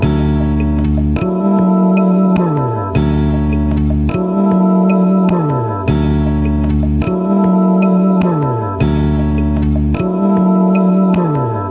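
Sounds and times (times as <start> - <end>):
smooth melodic sampled music loop: 0.0 - 11.6.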